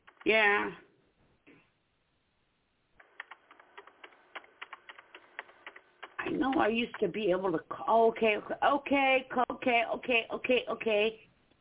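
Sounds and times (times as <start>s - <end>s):
light clicking keystrokes typing a message: 0.0s - 0.3s, 3.0s - 7.4s
speech: 0.2s - 0.8s, 6.4s - 11.3s.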